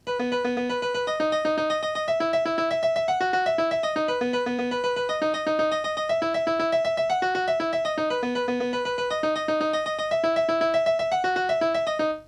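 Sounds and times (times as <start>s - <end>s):
piano rhythms: 0.0s - 12.2s.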